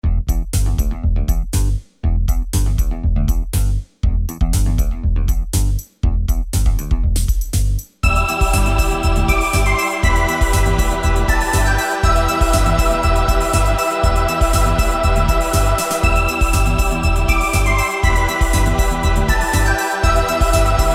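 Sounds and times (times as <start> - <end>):
groove bass line: 0.0 - 20.9.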